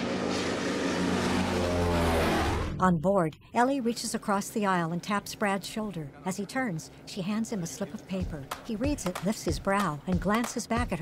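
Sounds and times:
plane engines roaring as it lifts off from the runway: 0.0s - 10.7s
speech: 2.8s - 11.0s.

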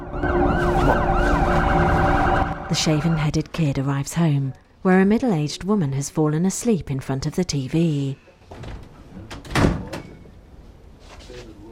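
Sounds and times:
emergency vehicle sirens wailing: 0.0s - 3.5s
speech: 2.7s - 8.8s.

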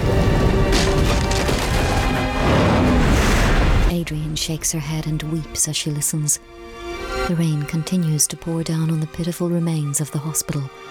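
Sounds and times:
trees crashing down in a mudslide with muddy water and earth rushing: 0.1s - 3.9s
speech: 4.4s - 10.9s.

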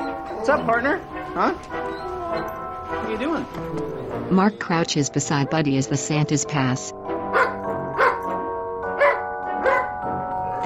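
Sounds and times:
speech: 0.4s - 7.5s
shepherd dog barking: 7.3s - 8.4s, 9.0s - 10.0s.

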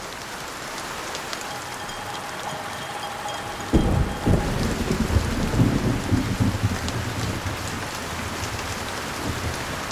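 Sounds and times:
heavy rain pouring on palm fronds after dark: 0.0s - 9.8s
low rolling thunder: 3.5s - 8.5s.

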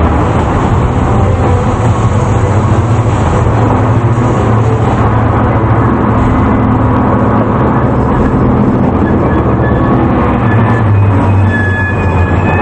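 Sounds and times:
heavy train rolling through a tunnel: 0.0s - 12.5s
faint train brake squeal as it slows: 8.9s - 12.5s.

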